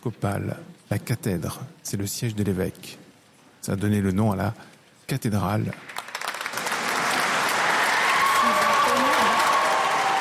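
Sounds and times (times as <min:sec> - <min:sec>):
speech: 0:00.0 - 0:03.0, 0:03.6 - 0:06.0
large audience applauding in a cathedral: 0:05.7 - 0:10.1.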